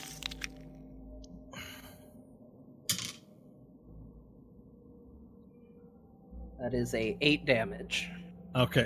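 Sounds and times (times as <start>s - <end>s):
damage dice rolling on a hard tabletop: 2.9s - 3.2s
speech: 6.6s - 8.8s.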